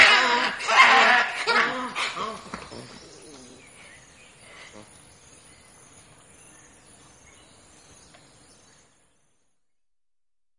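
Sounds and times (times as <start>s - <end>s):
fossa yelping calls: 0.0s - 5.0s.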